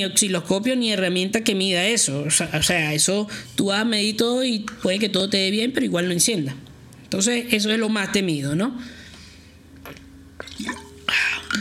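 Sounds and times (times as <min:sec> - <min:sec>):
speech: 0:00.0 - 0:09.0
person sipping water: 0:09.7 - 0:11.5
wet slurps and swallows: 0:09.8 - 0:11.5.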